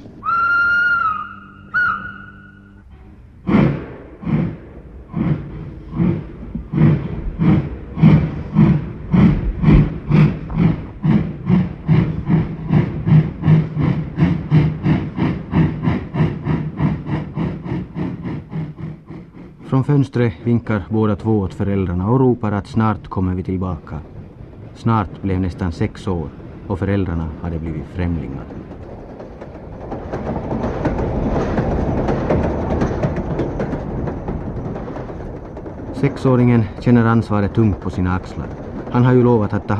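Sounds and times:
steam train chuffing as it departs: 0.0 - 39.7
steam train whistle blast: 0.2 - 3.7
speech: 19.7 - 24.1, 24.8 - 28.7, 36.0 - 39.7.

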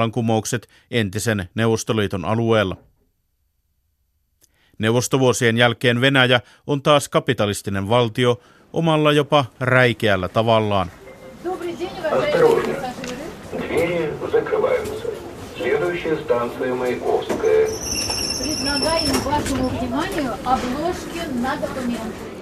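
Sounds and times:
speech: 0.0 - 2.9, 4.8 - 11.0, 16.0 - 17.3, 18.8 - 22.3
metro train car in St Petersburg rumbling along its rails: 11.1 - 22.3
woman talking loudly selling passport covers to passengers: 11.4 - 13.4, 18.4 - 22.2
high-pitched metro train wheel squeal: 17.3 - 20.0.

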